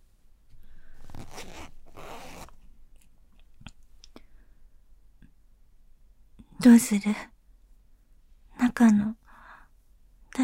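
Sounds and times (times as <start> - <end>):
fabric rustling: 0.8 - 2.7
trouser zipper pulled down: 1.0 - 2.6
speech: 6.6 - 7.3, 8.8 - 9.2.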